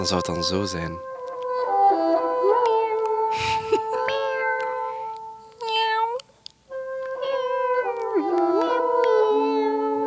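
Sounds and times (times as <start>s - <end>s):
speech: 0.0s - 1.1s
cat in heat yowling: 1.4s - 4.9s, 5.6s - 6.2s, 7.0s - 10.0s.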